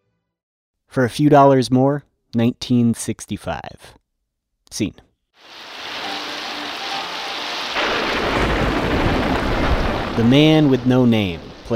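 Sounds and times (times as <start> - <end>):
speech: 1.0 - 4.0, 4.7 - 5.8, 10.2 - 11.7
steady hissing rainfall on a town's main street: 5.4 - 11.7
deep loud thunder rumbling: 5.5 - 11.7.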